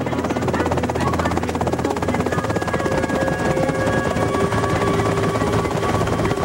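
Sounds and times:
helicopter rotor chopping as it prepares to land: 0:00.0 - 0:06.4
helicopter whining engine tones: 0:00.0 - 0:06.4.

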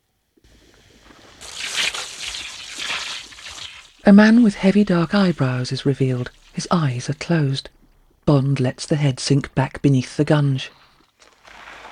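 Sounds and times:
hanging water jet spraying onto a face: 0:00.4 - 0:08.2
speech: 0:04.1 - 0:10.8.

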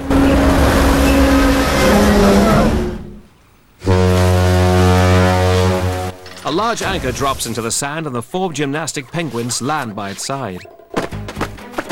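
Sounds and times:
deep sustained ship's horn blaring: 0:00.0 - 0:06.3
huge container ship grinding and rumbling as it plows into a beach: 0:00.0 - 0:07.8
speech: 0:06.5 - 0:10.8.

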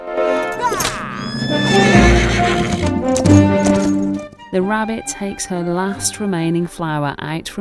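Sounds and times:
horse neighing: 0:00.3 - 0:04.3
horse hooves clopping away: 0:01.0 - 0:04.4
speech: 0:04.6 - 0:07.5.

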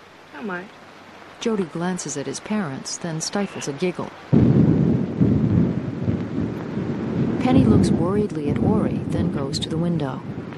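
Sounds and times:
driving rain during a storm: 0:00.0 - 0:10.5
speech: 0:00.4 - 0:04.6, 0:07.4 - 0:10.5
thunder rumbling during a storm: 0:01.5 - 0:10.5.

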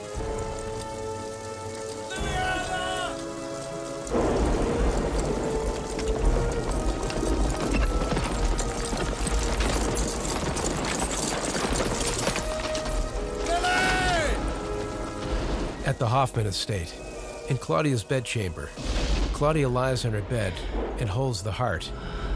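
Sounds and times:
horses ridden through woods, hooves clip-clopping: 0:00.0 - 0:16.0
speech: 0:16.0 - 0:22.2.

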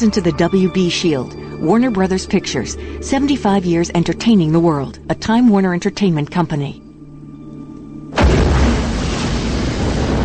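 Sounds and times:
speech: 0:00.0 - 0:06.8
fireball explosion boom: 0:08.2 - 0:10.2.

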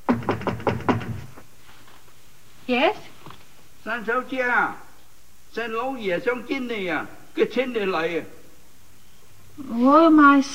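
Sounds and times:
knocking on a bedroom door: 0:00.0 - 0:01.4
speech: 0:02.7 - 0:03.1, 0:03.8 - 0:04.8, 0:05.5 - 0:08.4, 0:09.6 - 0:10.5.

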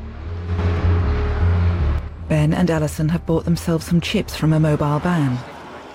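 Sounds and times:
car engine rumbling as the car pulls off: 0:00.0 - 0:05.4
speech: 0:02.3 - 0:05.5.

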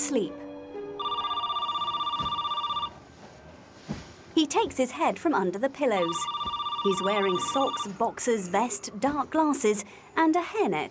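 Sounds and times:
speech: 0:00.1 - 0:00.4, 0:04.4 - 0:10.8
telephone ringing with electronic warbling trill: 0:01.0 - 0:03.0, 0:06.0 - 0:08.0.

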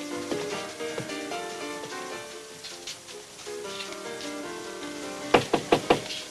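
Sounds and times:
soft orchestral music: 0:00.0 - 0:06.3
man knocking firmly on a dressing room door: 0:05.3 - 0:06.1.

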